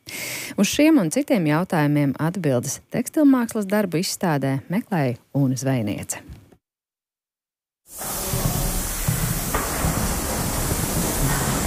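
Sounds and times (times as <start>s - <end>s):
speech: 0.5s - 6.4s
fabric steamer hissing: 7.9s - 11.6s.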